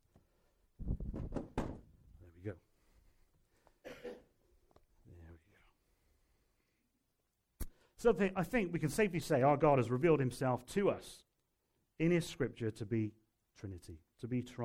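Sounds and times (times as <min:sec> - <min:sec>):
chair being shifted back into place: 0:00.9 - 0:01.9
speech: 0:02.4 - 0:02.7, 0:08.0 - 0:11.3, 0:12.0 - 0:14.6.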